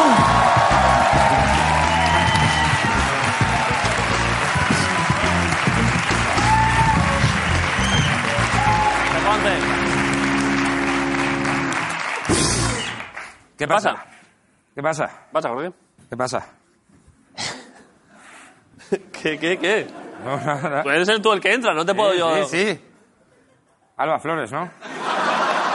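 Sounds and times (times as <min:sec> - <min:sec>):
crowd whooping and cheering: 0:00.0 - 0:13.2
audience applause greeting a guest introduced on stage: 0:00.0 - 0:13.4
laughter: 0:03.8 - 0:05.2, 0:13.0 - 0:16.0, 0:18.2 - 0:23.9
speech: 0:13.6 - 0:14.1, 0:14.8 - 0:16.6, 0:18.9 - 0:22.9, 0:24.0 - 0:24.9.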